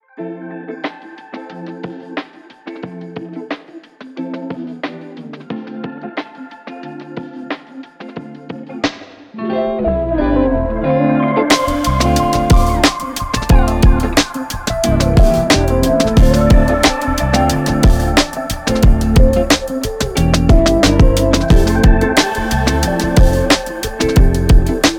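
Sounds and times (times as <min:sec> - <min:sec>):
smooth jazz music: 0:09.4 - 0:24.9.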